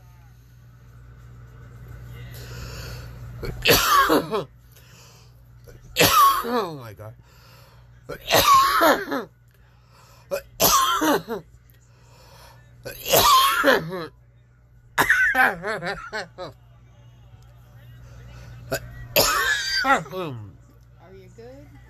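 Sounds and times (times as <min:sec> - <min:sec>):
low steady engine-like hum: 0:00.0 - 0:21.8
person coughing in a prolonged fit after smoking: 0:03.4 - 0:04.5, 0:06.0 - 0:06.7, 0:08.1 - 0:09.3, 0:10.3 - 0:11.4, 0:12.9 - 0:14.1, 0:15.0 - 0:15.7, 0:18.7 - 0:20.5
speech: 0:03.4 - 0:04.6, 0:06.0 - 0:07.4, 0:08.1 - 0:09.4, 0:11.0 - 0:11.5, 0:12.8 - 0:14.2, 0:15.4 - 0:16.6, 0:18.7 - 0:20.5
laughter: 0:15.1 - 0:16.6.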